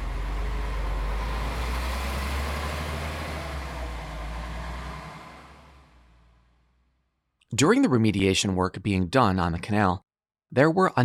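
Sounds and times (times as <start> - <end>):
school buses idling with diesel rumble during toxic waste cleanup: 0.0 - 6.6
speech: 7.5 - 11.0.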